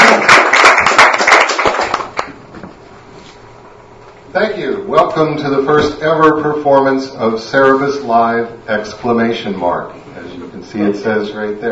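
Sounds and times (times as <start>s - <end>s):
room full of people applauding: 0.0s - 2.4s
speech: 5.2s - 11.6s.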